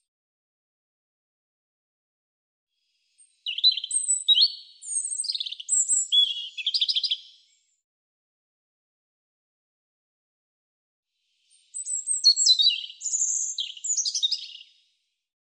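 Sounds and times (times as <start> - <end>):
European robin singing: 3.2 - 7.6, 11.5 - 14.8.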